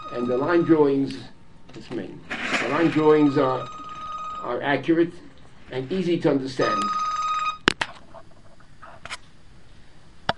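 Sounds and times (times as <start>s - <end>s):
phone electronic ringtone: 0.0s - 1.3s, 2.3s - 4.8s, 6.6s - 7.6s
speech: 0.1s - 3.8s, 4.4s - 7.0s.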